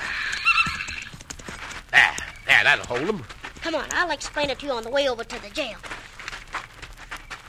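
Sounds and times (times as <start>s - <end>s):
horse whinnying: 0.0s - 1.2s
speech: 1.9s - 5.9s.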